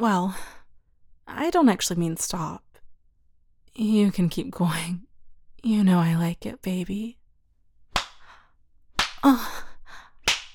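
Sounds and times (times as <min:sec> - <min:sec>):
speech: 0:00.0 - 0:00.5, 0:01.3 - 0:02.7, 0:03.8 - 0:07.2, 0:09.2 - 0:09.7
hand slaps on skin: 0:07.9 - 0:08.3, 0:09.0 - 0:09.4, 0:10.2 - 0:10.5.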